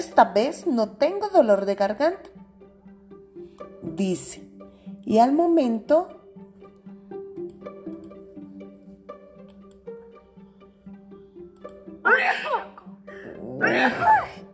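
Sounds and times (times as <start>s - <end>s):
speech: 0.0s - 2.4s, 3.9s - 4.4s, 5.0s - 6.2s, 13.6s - 14.4s
soft sustained musical tones: 0.0s - 14.5s
voice acting out a big violent sneeze: 12.1s - 14.5s.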